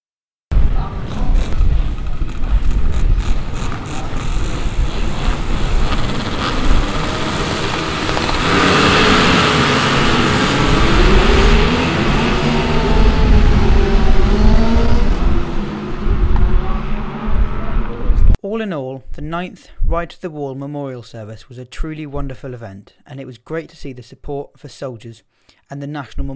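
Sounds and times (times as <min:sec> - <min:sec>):
large group of motorcycles arriving, many of them Harley-Davidsons: 0:00.6 - 0:18.4
speech: 0:18.6 - 0:26.3.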